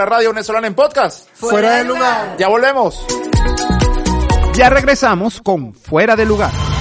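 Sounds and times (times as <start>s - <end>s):
speech: 0.0s - 3.8s, 4.6s - 6.7s
person shouting loudly: 1.4s - 2.4s.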